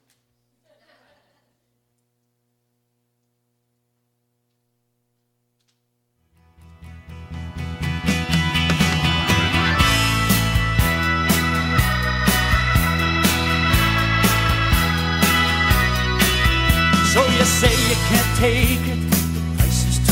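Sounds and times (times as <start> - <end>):
instrumental song playing: 6.4 - 20.1
speech: 18.4 - 19.0.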